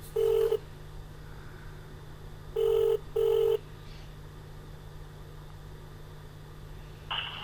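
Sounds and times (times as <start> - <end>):
ringback tone over a phone line: 0.1 - 0.6, 2.6 - 3.6.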